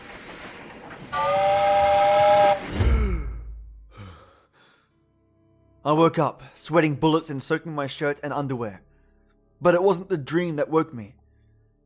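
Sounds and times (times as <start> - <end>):
shrill sustained piercing whistle: 1.1 - 2.7
speech: 5.8 - 8.9, 9.6 - 11.2.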